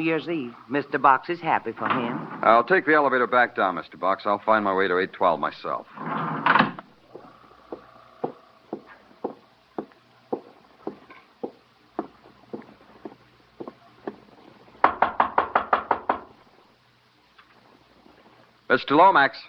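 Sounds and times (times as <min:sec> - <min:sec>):
speech: 0:00.0 - 0:06.1, 0:18.8 - 0:19.4
knocking on a wooden hotel room door: 0:07.1 - 0:14.2, 0:14.8 - 0:16.4.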